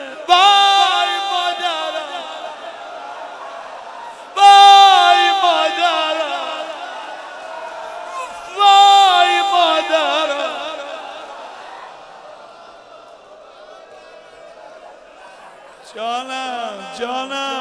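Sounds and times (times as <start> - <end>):
large audience wailing and crying in mourning on a night of martyrdom commemoration: 0.0 - 17.1
laughter: 9.2 - 16.9.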